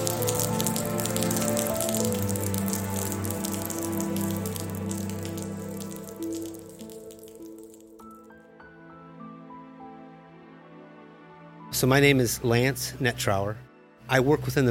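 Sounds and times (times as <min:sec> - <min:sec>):
steady rain falling: 0:00.0 - 0:08.0
speech: 0:11.8 - 0:14.6.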